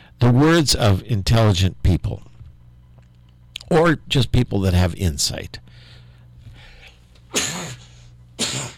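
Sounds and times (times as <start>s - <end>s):
low steady hum: 0.0s - 8.7s
speech: 0.2s - 2.3s, 3.7s - 5.9s
person sneezing: 7.3s - 8.7s.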